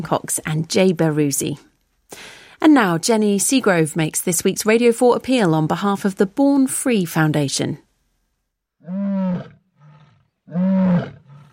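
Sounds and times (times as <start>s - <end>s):
speech: 0.0s - 7.8s, 8.8s - 9.6s, 10.5s - 11.2s
lions roaring: 8.8s - 11.5s.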